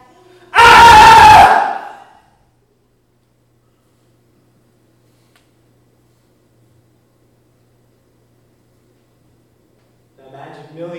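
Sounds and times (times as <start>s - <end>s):
crowd of people screaming: 0.6s - 2.2s.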